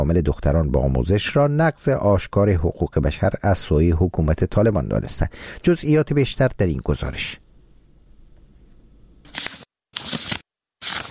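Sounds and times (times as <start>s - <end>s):
speech: 0.0s - 7.4s
faint low hum: 4.2s - 9.3s
book pages turned by a schoolgirl: 9.3s - 11.0s.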